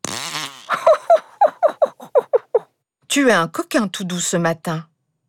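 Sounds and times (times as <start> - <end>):
fart: 0.0 - 0.8
speech: 3.2 - 4.9.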